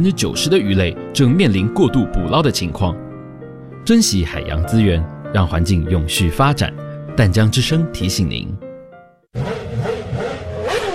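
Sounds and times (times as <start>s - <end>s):
speech: 0.0s - 3.0s, 3.8s - 8.6s, 9.3s - 9.6s
motor scooter engine revving as throttle is opened: 9.3s - 10.9s.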